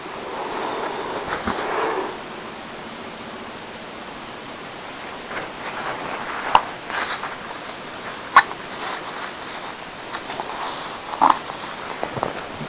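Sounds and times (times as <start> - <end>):
background hiss: 0.0 - 12.6
paper napkins rustling while crafting roses: 4.8 - 12.6.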